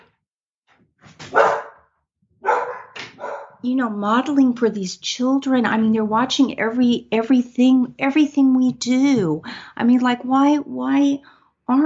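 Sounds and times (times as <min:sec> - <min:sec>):
10-month-old puppy barking: 0:01.3 - 0:03.6
speech: 0:03.6 - 0:11.8.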